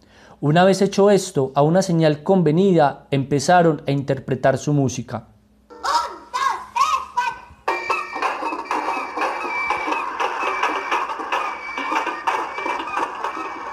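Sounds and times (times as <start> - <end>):
speech: 0.4 - 5.3
donkey calling: 5.7 - 13.7
rooster calling: 7.7 - 13.7.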